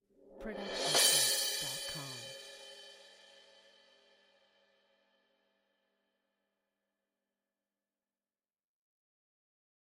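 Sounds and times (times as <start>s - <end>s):
16 inch crash cymbal short swell with mallets: 0.5s - 3.9s.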